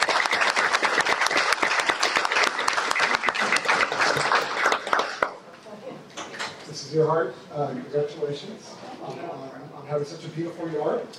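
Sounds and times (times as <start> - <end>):
audience applause congratulating an award winner: 0.0 - 5.4
speech: 6.9 - 11.1.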